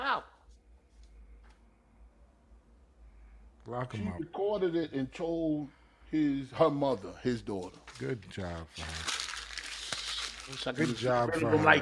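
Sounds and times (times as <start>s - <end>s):
speech: 3.7s - 9.2s, 10.5s - 11.7s
paper being crumpled: 7.5s - 11.3s.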